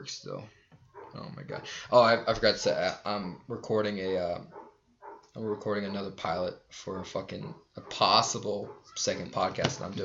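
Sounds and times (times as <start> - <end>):
speech: 0.0 - 4.6, 5.4 - 10.0
dog barking: 0.9 - 1.8, 4.4 - 6.1, 7.5 - 9.1.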